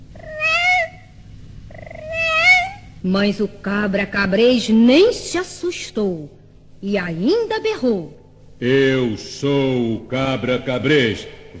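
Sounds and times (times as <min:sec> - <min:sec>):
faint low hum: 0:00.0 - 0:11.5
cat meowing: 0:00.2 - 0:01.1, 0:01.7 - 0:03.0
speech: 0:03.0 - 0:11.5.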